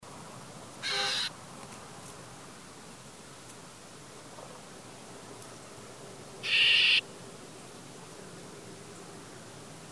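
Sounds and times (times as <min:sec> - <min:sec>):
Chinese grassbird Graminicola striatus sinicus alarm call in Guangxi China: 0:00.8 - 0:01.3, 0:06.4 - 0:07.0.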